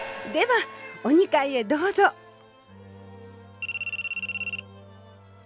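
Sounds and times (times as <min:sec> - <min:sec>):
speech: 0:00.3 - 0:02.2
telephone ringing with a trilling burst of high electronic pulses: 0:03.6 - 0:04.6.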